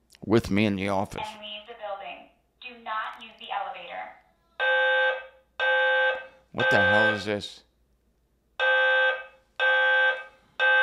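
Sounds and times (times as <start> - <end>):
speech: 0.2 - 1.4, 6.6 - 7.7
building fire alarm blaring in harsh electronic tones: 4.6 - 7.3, 8.6 - 10.8.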